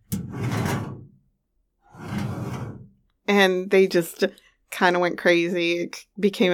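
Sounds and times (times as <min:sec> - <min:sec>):
toy drawer sliding open with a rumbling scrape: 0:00.0 - 0:01.2, 0:01.9 - 0:03.0
speech: 0:03.3 - 0:06.5.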